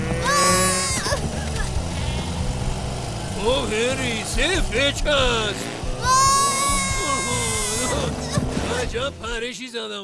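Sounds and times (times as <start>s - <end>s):
sheep bleating: 0.2s - 2.6s, 6.0s - 8.4s
speech: 3.7s - 6.2s, 8.9s - 10.0s.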